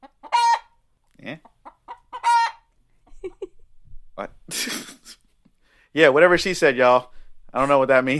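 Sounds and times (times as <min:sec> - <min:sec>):
chicken clucking and squawking: 0:00.0 - 0:03.6
speech: 0:04.5 - 0:04.9, 0:06.0 - 0:08.1.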